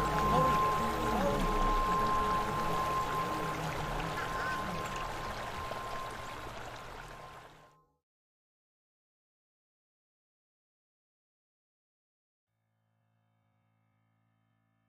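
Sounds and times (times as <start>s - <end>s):
indistinct voices: 0.0s - 5.5s
water splashing and pouring as a person touches it: 0.0s - 7.7s.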